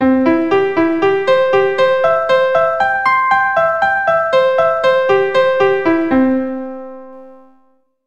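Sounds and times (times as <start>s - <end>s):
C major arpeggio triplets played with the right hand: 0.0s - 7.6s.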